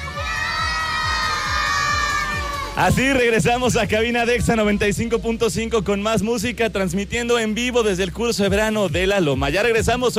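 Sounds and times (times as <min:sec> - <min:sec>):
many children shouting goodbye together at a summer course: 0:00.0 - 0:03.0
speech: 0:02.8 - 0:10.1.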